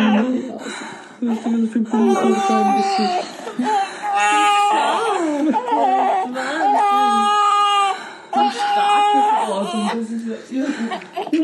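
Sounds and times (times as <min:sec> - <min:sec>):
speech: 0:01.2 - 0:04.4
newborn baby in its first minute of life whimpering and crying: 0:01.3 - 0:10.2, 0:10.9 - 0:11.4.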